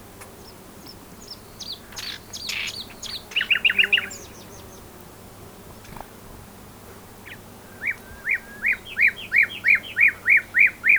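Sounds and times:
common nightingale Luscinia megarhynchos singing: 0:01.2 - 0:04.5, 0:07.3 - 0:10.9.

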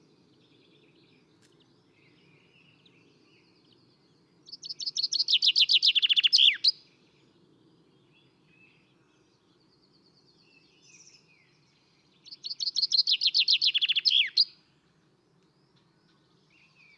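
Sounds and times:
common chaffinch Fringilla coelebs singing: 0:04.5 - 0:06.8, 0:12.2 - 0:14.5.

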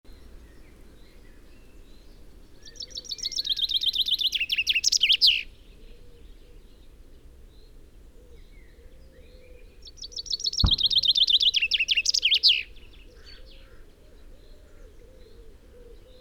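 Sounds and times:
common chaffinch Fringilla coelebs song: 0:00.1 - 0:05.6, 0:10.0 - 0:13.7
brief thump: 0:10.6 - 0:12.0.

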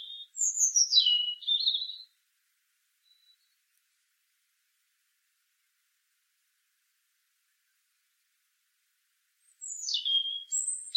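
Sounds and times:
European robin singing: 0:00.0 - 0:02.2, 0:03.0 - 0:03.6, 0:09.4 - 0:10.9.

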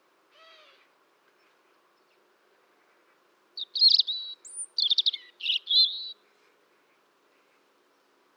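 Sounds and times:
European robin singing: 0:03.6 - 0:06.2.

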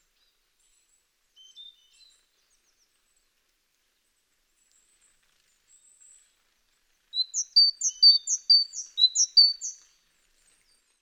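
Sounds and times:
great tit Parus major calling with high clipped chirps: 0:07.2 - 0:09.8.

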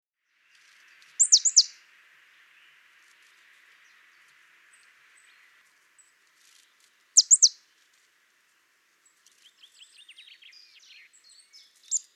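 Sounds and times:
faint steady hiss: 0:00.2 - 0:12.1
marsh tit Poecile palustris calling: 0:01.2 - 0:01.7, 0:07.2 - 0:07.6, 0:11.8 - 0:12.1.

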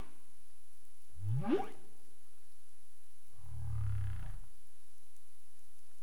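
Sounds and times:
humpback whale low steady moan: 0:03.5 - 0:04.5.

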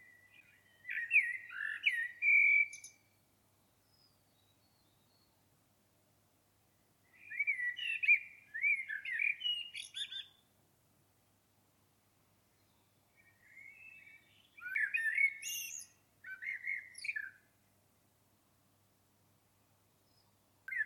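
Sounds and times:
common blackbird singing: 0:00.0 - 0:03.2, 0:03.9 - 0:05.3, 0:07.1 - 0:10.4, 0:12.6 - 0:17.4, 0:20.1 - 0:20.8.

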